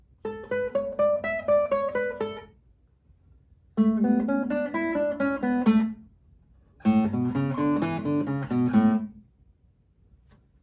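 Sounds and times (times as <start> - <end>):
fingerpicked guitar: 0.2 - 2.6, 3.8 - 6.1, 6.8 - 9.2.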